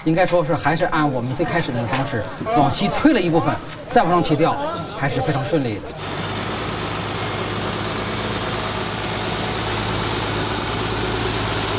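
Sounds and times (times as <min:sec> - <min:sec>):
speech: 0:00.0 - 0:06.2
heavy truck engine rumbling as truck starts moving from archaeological dig site: 0:05.9 - 0:11.7.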